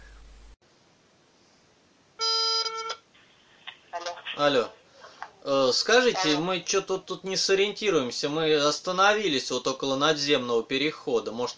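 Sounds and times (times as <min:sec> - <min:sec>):
constant hiss: 0:00.0 - 0:11.5
phone line tone as a call is placed: 0:02.2 - 0:03.0
speech: 0:04.4 - 0:04.8, 0:05.4 - 0:11.5.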